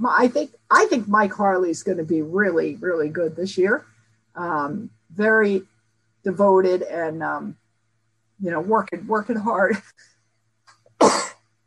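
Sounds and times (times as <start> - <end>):
speech: 0.0 - 7.6, 8.4 - 10.1
sneeze: 11.0 - 11.5.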